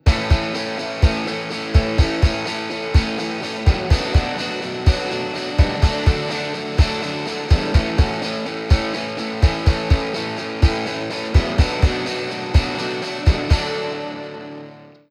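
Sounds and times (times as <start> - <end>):
guitars: 0.0 - 15.0
kick drum: 0.1 - 12.0, 12.6 - 13.8.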